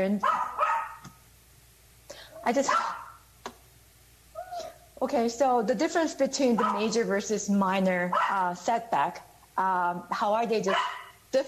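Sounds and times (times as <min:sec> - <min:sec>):
speech: 0:00.0 - 0:00.4, 0:02.4 - 0:03.0, 0:05.0 - 0:11.4
dog barking: 0:00.2 - 0:01.1, 0:02.6 - 0:03.2, 0:06.6 - 0:07.0, 0:08.1 - 0:08.5, 0:10.7 - 0:11.2.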